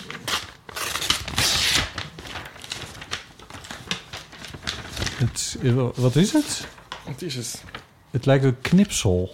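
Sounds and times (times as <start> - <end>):
paper envelope being torn open and crinkled: 0.0 - 6.9
speech: 5.2 - 9.3.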